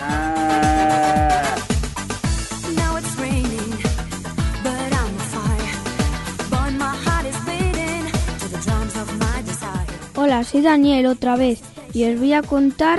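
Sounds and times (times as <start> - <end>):
cow mooing: 0.0 - 1.7
busy steady rhythmic beat: 0.0 - 12.7
speech: 10.3 - 12.9.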